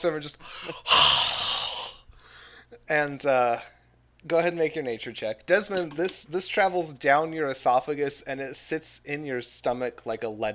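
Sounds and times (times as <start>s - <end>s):
speech: 0.0s - 1.3s, 2.7s - 10.5s
person breathing out forcefully into someone's face: 0.4s - 2.7s.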